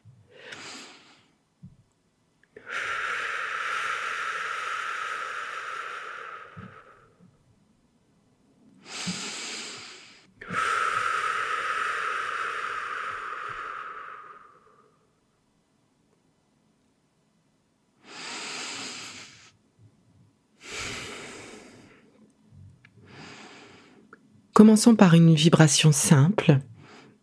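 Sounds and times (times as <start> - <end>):
deep slow breathing exhalations: 2.6 - 7.4, 8.8 - 15.2, 18.0 - 19.6, 20.6 - 24.2
speech: 24.6 - 26.7.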